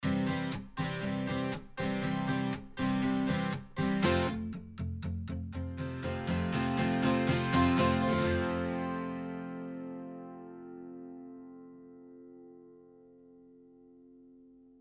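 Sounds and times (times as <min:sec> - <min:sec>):
strummed strings: 0:00.0 - 0:11.0.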